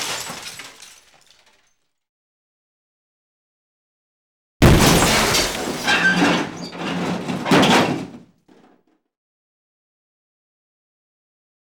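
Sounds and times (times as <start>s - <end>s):
medium impacts: 4.8s - 8.7s.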